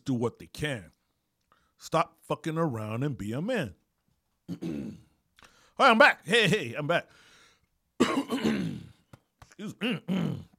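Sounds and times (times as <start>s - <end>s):
speech: 0.1s - 1.0s, 1.8s - 3.8s, 4.5s - 5.1s, 5.8s - 7.3s, 8.0s - 8.9s, 9.6s - 10.5s
man wearing headphones clearing throat: 4.5s - 5.2s, 8.0s - 10.5s
man's guttural grunts and hums: 9.7s - 10.5s.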